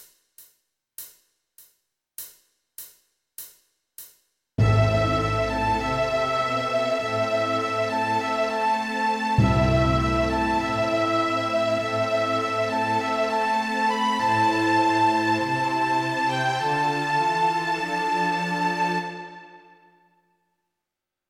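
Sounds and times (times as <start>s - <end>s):
small orchestra: 4.6s - 19.9s
transverse flute: 4.6s - 20.0s.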